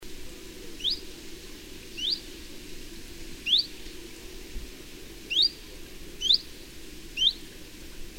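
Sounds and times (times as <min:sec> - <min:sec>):
chiffchaff calls: 0:00.7 - 0:01.2, 0:01.9 - 0:02.3, 0:03.4 - 0:03.8, 0:05.3 - 0:05.6, 0:06.2 - 0:06.6, 0:07.2 - 0:07.4.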